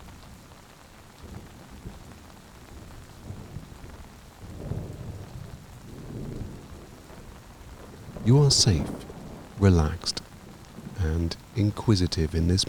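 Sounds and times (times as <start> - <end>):
steady rain in a forest: 0.0 - 12.6
rumbling thunder in a forest: 4.4 - 11.6
speech: 8.2 - 10.2, 11.1 - 12.6.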